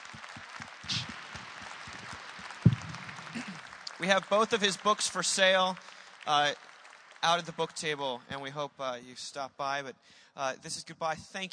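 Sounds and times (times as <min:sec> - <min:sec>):
audience applause: 0:00.0 - 0:08.3
speech: 0:04.0 - 0:11.5.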